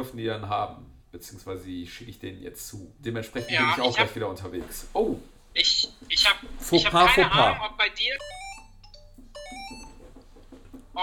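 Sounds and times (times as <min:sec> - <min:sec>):
speech: 0:00.0 - 0:08.5
low hum: 0:00.0 - 0:11.0
landline telephone ringing with a melodic electronic ringtone: 0:03.4 - 0:04.1, 0:08.1 - 0:10.2.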